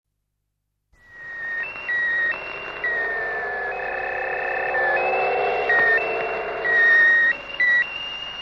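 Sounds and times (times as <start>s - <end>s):
electronic sound effect: 1.3s - 7.7s.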